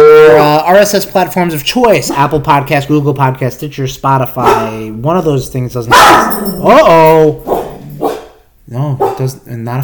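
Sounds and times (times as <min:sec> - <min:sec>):
speech: 0:00.6 - 0:07.6, 0:08.7 - 0:09.8
dog barking: 0:04.4 - 0:04.8, 0:05.9 - 0:06.6, 0:07.4 - 0:08.4, 0:09.0 - 0:09.3
dog yelping: 0:04.4 - 0:04.8, 0:05.9 - 0:06.7, 0:07.4 - 0:08.4.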